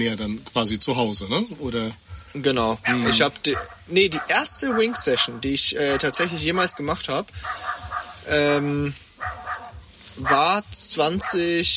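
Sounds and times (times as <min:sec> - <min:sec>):
speech: 0:00.0 - 0:09.4, 0:10.2 - 0:11.7
neighbour's dog barking: 0:02.8 - 0:08.4, 0:09.2 - 0:11.7.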